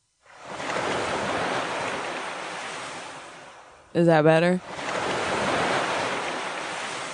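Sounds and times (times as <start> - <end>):
ocean waves washing against the shore: 0.0 - 7.1
speech: 3.9 - 4.8
person asking a question: 4.0 - 4.6.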